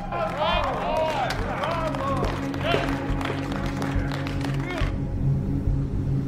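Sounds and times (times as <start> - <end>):
crowd of guests clapping and applauding: 0.0 - 5.0
low constant hum: 0.0 - 6.2.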